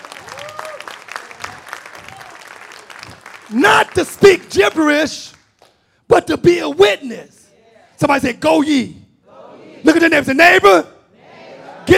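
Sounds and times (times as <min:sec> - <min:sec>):
congregation clapping and applauding: 0:00.0 - 0:05.8
speech: 0:03.5 - 0:05.4, 0:06.1 - 0:07.4, 0:08.0 - 0:09.0, 0:09.8 - 0:10.9.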